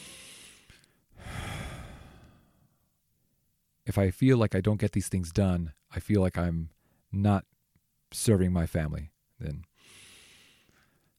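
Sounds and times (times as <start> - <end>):
person taking a slow deep breath to calm down: 0.0 - 2.8, 9.8 - 11.1
speech: 3.9 - 7.5, 8.1 - 10.0.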